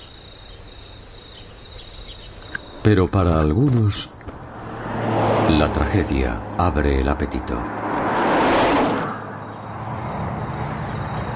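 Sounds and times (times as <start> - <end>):
cars and trucks driving along a road: 0.0 - 11.3
speech: 2.8 - 4.2, 5.5 - 7.8
vehicle whooshing past on a road: 4.3 - 11.3.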